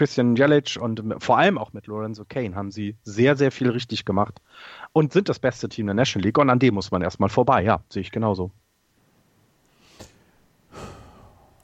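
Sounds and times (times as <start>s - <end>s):
speech: 0.0s - 8.6s
deep breath in and out: 4.5s - 4.9s, 9.8s - 11.6s.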